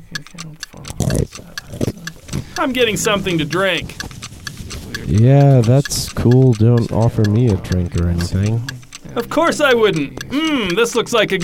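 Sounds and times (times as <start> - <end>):
loud clock ticking: 0.0 - 11.4
speech: 2.6 - 4.1, 5.1 - 11.4.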